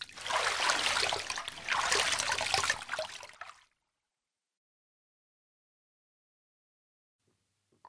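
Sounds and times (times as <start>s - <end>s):
hot water overflowing from a private hot spring bath: 0.0s - 3.7s.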